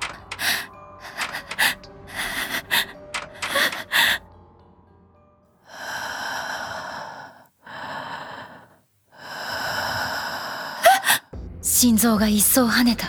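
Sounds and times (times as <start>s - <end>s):
person breathing heavily with short sharp gasps and rasping breaths: 0.0s - 4.2s, 5.7s - 11.3s
speech: 11.8s - 13.0s.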